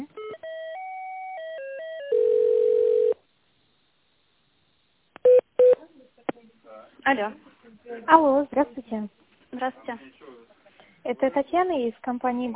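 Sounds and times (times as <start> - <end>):
telephone ring pulses: 0.2 - 3.2
speech: 7.1 - 10.3, 11.0 - 12.5.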